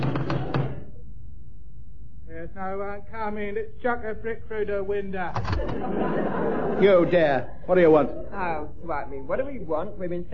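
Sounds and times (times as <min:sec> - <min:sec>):
firm knocking on a door: 0:00.0 - 0:00.9
speech: 0:02.5 - 0:10.3
laughter: 0:05.5 - 0:08.7.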